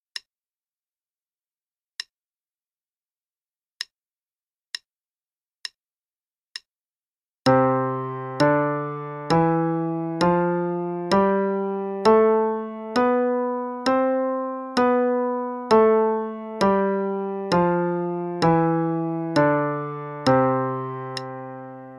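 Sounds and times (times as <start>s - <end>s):
C major scale being played: 7.5s - 21.9s.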